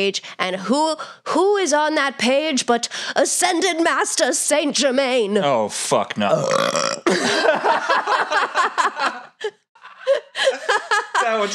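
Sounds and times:
speech: 0:00.0 - 0:11.5
long gravelly burp: 0:06.2 - 0:07.3
laughter: 0:07.1 - 0:11.5.

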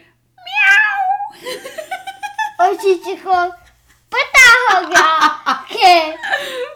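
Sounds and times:
person imitating a cat meow: 0:00.4 - 0:01.3
speech: 0:02.8 - 0:03.6, 0:04.2 - 0:06.6.

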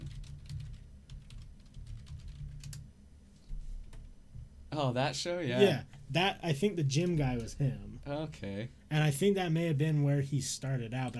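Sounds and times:
rapid typing on a computer keyboard: 0:00.0 - 0:02.8
speech: 0:04.8 - 0:11.1.

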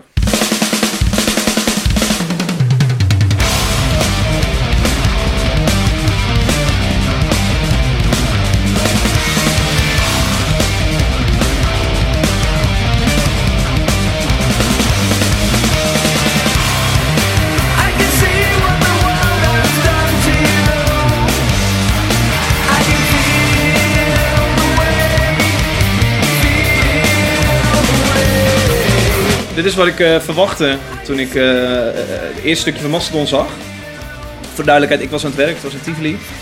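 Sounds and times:
driving drums in progressive metal: 0:00.0 - 0:36.4
heavy distorted guitars in progressive metal: 0:00.0 - 0:36.4
clean sung vocals in progressive metal: 0:17.6 - 0:21.6, 0:22.4 - 0:29.6
speech: 0:29.8 - 0:33.7, 0:34.6 - 0:36.4.

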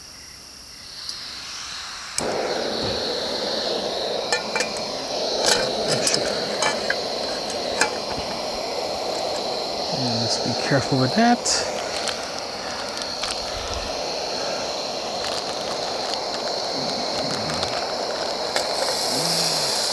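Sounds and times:
butane camping stove hissing under a pan of food at a campsite: 0:00.0 - 0:19.9
light metallic clinks of utensils: 0:03.9 - 0:13.3, 0:15.2 - 0:19.9
speech: 0:10.4 - 0:11.8.

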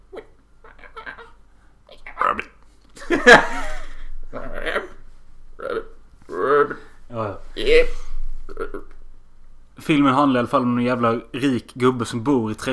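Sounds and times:
voice imitating frog croaks: 0:00.0 - 0:02.6, 0:05.6 - 0:06.9, 0:08.5 - 0:09.0
speech: 0:03.1 - 0:03.5, 0:07.7 - 0:08.0, 0:09.9 - 0:12.7.

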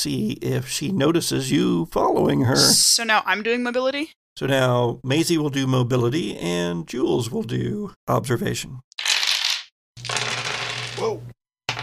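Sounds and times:
speech: 0:00.0 - 0:09.0, 0:11.0 - 0:11.4
handful of dice rolled on a hard tabletop: 0:09.0 - 0:11.8.

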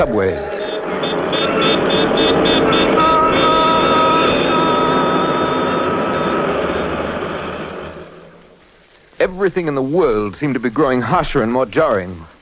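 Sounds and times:
speech: 0:00.0 - 0:03.4, 0:09.2 - 0:12.3
airplane drone with engine roar and high whine: 0:00.0 - 0:09.6.

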